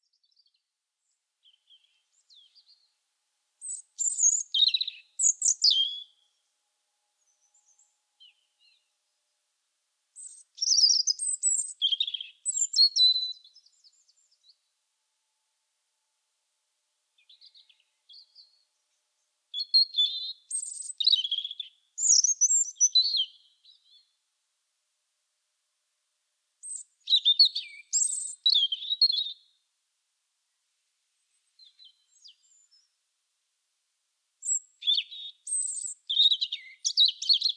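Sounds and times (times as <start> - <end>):
bird: 0.0 - 3.0, 3.6 - 6.4, 7.2 - 8.9, 10.2 - 14.7, 17.2 - 24.2, 26.6 - 29.6, 31.2 - 33.0, 34.4 - 37.5.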